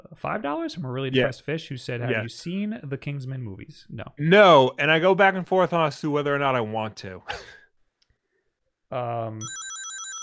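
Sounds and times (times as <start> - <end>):
speech: 0.2 - 7.6, 8.9 - 9.8
phone notification ringtone: 9.4 - 10.2.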